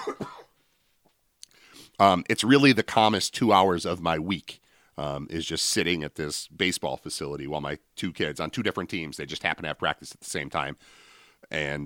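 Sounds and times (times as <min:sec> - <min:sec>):
person coughing: 0:00.0 - 0:00.6
speech: 0:02.0 - 0:11.8.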